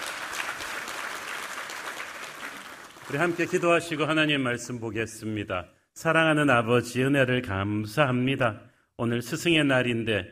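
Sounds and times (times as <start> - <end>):
church congregation applauding during a service: 0.0 - 4.2
speech: 3.1 - 10.3.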